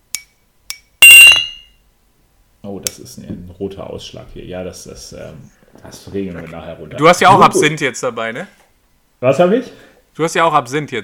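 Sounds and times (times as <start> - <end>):
glasses clinking together in a toast: 1.0 - 1.8
speech: 2.9 - 8.6, 9.2 - 11.0.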